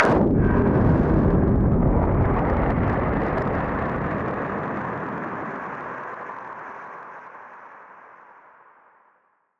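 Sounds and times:
noise bomb: 0:00.0 - 0:05.9.

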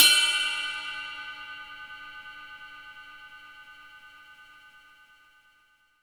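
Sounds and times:
ride cymbal bell: 0:00.0 - 0:03.8.

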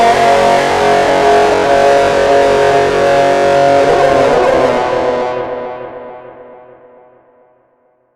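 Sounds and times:
distorted sound effect: 0:00.2 - 0:06.1.

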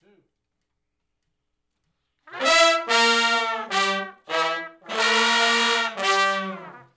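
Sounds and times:
R B horn section riff in G unison: 0:02.3 - 0:06.9.

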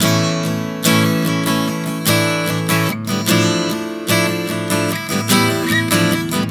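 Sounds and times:
acoustic guitar playing a chord progression from A to D minor: 0:00.0 - 0:06.4.

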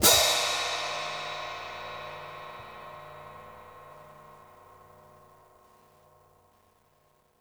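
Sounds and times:
open hi-hat: 0:00.0 - 0:05.6.

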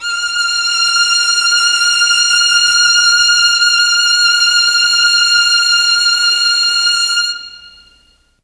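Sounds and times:
Mellotron chamber violins playing F4: 0:00.0 - 0:08.4.

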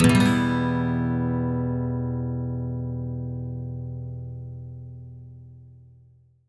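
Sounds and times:
electric and acoustic guitar sweeps in E minor: 0:00.0 - 0:04.2.

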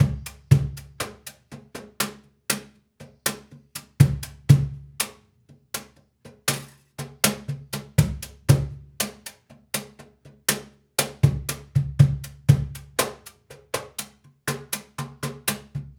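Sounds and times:
cajun percussion drums: 0:00.0 - 0:05.1, 0:05.8 - 0:15.9.

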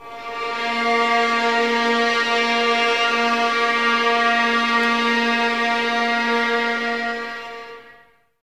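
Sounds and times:
string ensemble violins playing sul ponticello: 0:00.0 - 0:08.1.

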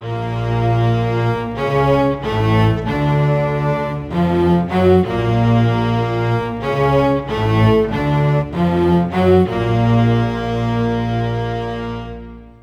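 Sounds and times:
low strings playing non legato in B flat minor: 0:00.0 - 0:12.6.

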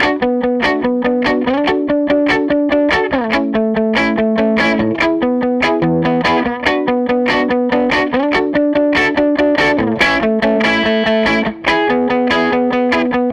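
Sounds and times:
electric guitar loop: 0:00.0 - 0:13.3.

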